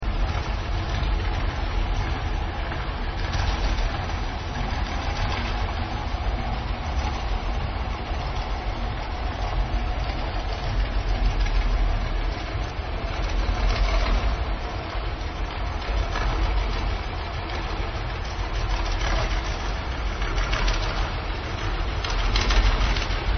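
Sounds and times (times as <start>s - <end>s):
ship: 0.0s - 23.3s.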